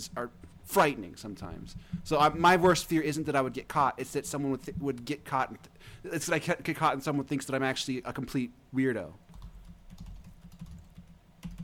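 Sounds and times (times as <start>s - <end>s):
speech: 0.0s - 9.3s
typing on a computer keyboard: 9.3s - 11.6s.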